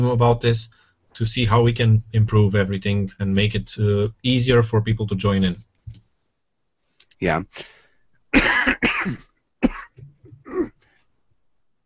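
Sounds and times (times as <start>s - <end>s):
speech: 0.0s - 5.7s, 7.2s - 9.3s
person with a croaky voice coughing: 8.3s - 10.9s
soft throat-clearing rasp: 8.4s - 11.0s.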